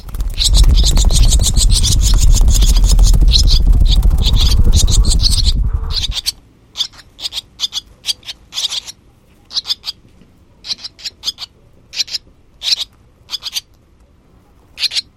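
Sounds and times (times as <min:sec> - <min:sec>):
barn swallow calls: 0:00.0 - 0:06.3.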